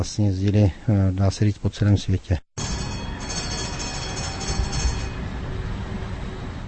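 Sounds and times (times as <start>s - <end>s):
speech: 0.0s - 2.7s
old Tatra T3 tram rumbling along its rails: 2.6s - 6.6s.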